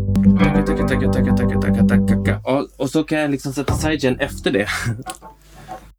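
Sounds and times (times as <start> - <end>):
effects-heavy sustained instrument tone with rhythmic programmed tremolo: 0.2 - 2.4
speech: 2.9 - 5.4.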